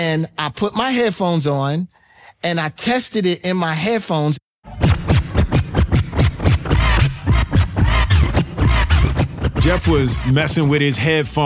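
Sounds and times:
speech: 0.0s - 4.8s, 9.6s - 11.4s
pulsing beat: 4.7s - 11.2s
rapid turntable record scratching: 4.7s - 11.4s.

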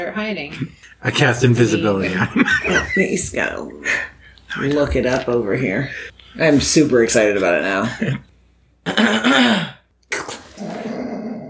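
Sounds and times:
speech: 0.0s - 9.7s
laughter: 1.8s - 3.5s
man clearing his throat in character: 8.8s - 10.8s.

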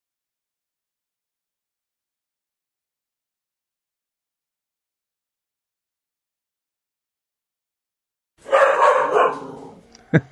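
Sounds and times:
pet dog barking: 8.4s - 9.8s.

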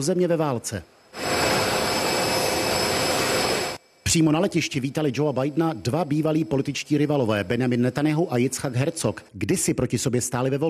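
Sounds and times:
speech: 0.0s - 1.0s, 4.1s - 10.6s
jet roar of an airplane landing: 0.8s - 9.3s.

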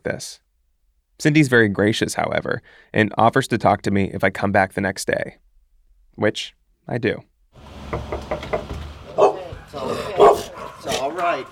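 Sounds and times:
speech: 0.0s - 0.4s, 1.2s - 5.4s, 6.2s - 8.5s, 11.2s - 11.5s
small dog yapping: 9.1s - 11.5s.

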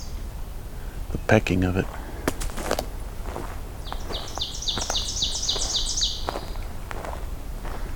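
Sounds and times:
pine warbler singing a trill: 0.0s - 0.2s, 3.8s - 6.7s
outdoor noise: 0.0s - 7.9s
speech: 1.2s - 2.0s
soft crunching footsteps: 1.8s - 7.9s.

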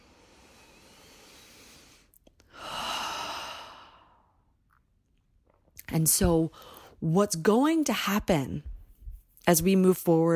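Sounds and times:
deep breath: 0.0s - 4.4s
speech: 5.9s - 8.7s, 9.4s - 10.3s.

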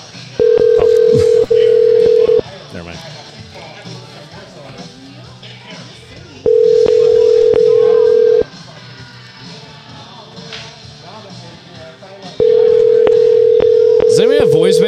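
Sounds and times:
faint murmur: 0.0s - 14.8s
telephone ringback tone on an unanswered call: 0.4s - 2.4s, 6.5s - 8.5s, 12.4s - 14.8s.

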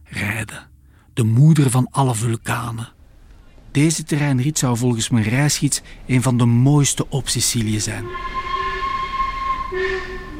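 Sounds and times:
speech: 0.4s - 3.0s, 3.7s - 8.5s
train arriving at the station in Syracuse Sicily with metallic whine and rumble: 2.9s - 10.3s.

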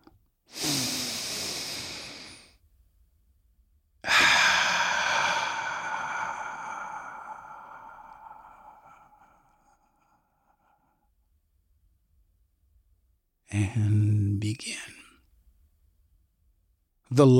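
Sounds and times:
deep breath in and out: 0.5s - 2.6s, 4.0s - 11.2s
speech: 13.5s - 14.9s, 17.1s - 17.3s.

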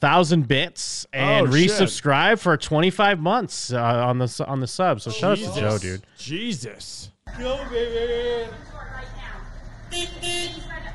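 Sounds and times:
speech: 0.0s - 9.2s, 9.9s - 10.9s
street noise: 5.1s - 10.9s
car horn honks: 9.8s - 10.9s.

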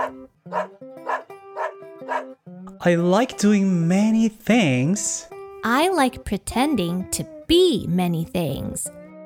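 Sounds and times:
speech: 0.0s - 1.3s, 2.8s - 9.0s
pet dog barking yappily: 0.0s - 2.3s.

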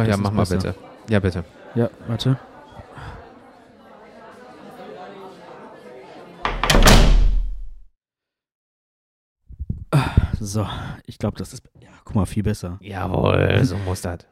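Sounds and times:
speech: 0.0s - 3.2s, 10.4s - 14.3s
laughter: 0.0s - 6.4s
chatter: 0.0s - 6.8s
door swinging shut with a heavy thud: 6.4s - 7.8s.

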